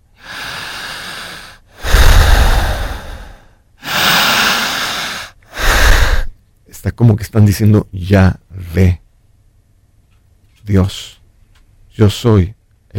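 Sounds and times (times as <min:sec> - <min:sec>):
deep breathing inhale and exhale: 0:00.0 - 0:06.4
speech: 0:07.0 - 0:09.0, 0:10.7 - 0:11.2, 0:12.0 - 0:12.9.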